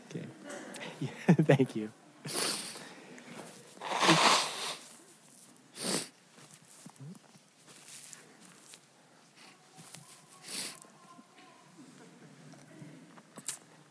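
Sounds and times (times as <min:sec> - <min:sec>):
speech: 0:01.0 - 0:02.4
person blowing nose with a honking blast: 0:02.3 - 0:02.8, 0:03.8 - 0:05.0, 0:05.7 - 0:06.1
person sniffing: 0:02.3 - 0:03.0, 0:03.7 - 0:05.0, 0:05.7 - 0:06.2, 0:10.4 - 0:10.8.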